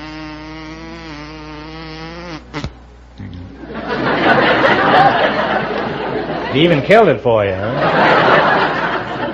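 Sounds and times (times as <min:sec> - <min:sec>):
person imitating a bumblebee with a vocal drone: 0:00.0 - 0:03.6
laughter: 0:03.6 - 0:07.0, 0:07.6 - 0:09.3
speech: 0:06.6 - 0:08.2.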